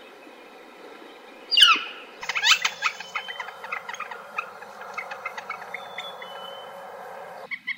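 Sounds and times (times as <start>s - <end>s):
northern flicker's fast, steady series of repeated calls: 1.5s - 7.5s.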